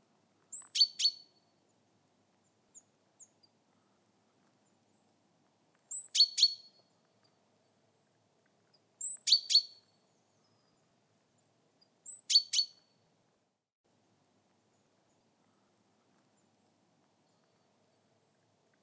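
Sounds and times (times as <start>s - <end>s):
female Java sparrow calling: 5.9s - 6.8s, 9.0s - 9.8s, 12.1s - 12.8s.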